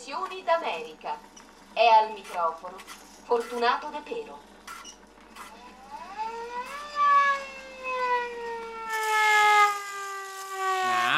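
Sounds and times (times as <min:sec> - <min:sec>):
speech: 0:00.1 - 0:04.5
siren wailing: 0:05.6 - 0:11.1.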